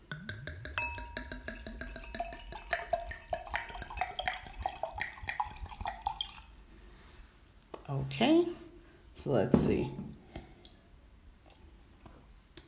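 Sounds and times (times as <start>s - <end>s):
faint clinks: 0.1s - 4.1s
wine pouring into a glass: 0.3s - 6.9s
speech: 8.0s - 8.6s, 9.2s - 10.1s.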